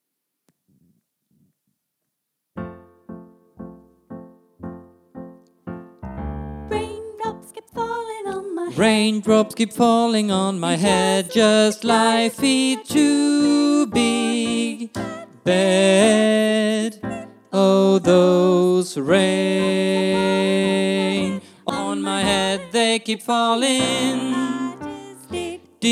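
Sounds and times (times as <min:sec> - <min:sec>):
senior choir singing in a bar: 0:07.9 - 0:09.9, 0:10.6 - 0:25.9.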